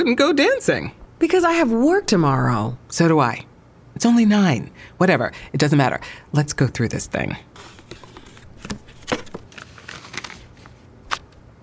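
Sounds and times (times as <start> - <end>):
speech: 0.0 - 7.7
paper crinkling and rustling as it is handled: 7.6 - 11.4.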